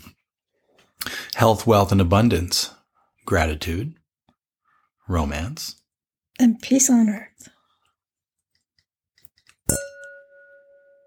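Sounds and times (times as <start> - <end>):
speech: 1.4 - 4.0, 5.1 - 5.8, 6.4 - 7.5
wine glasses clinking in a toast: 9.7 - 11.0.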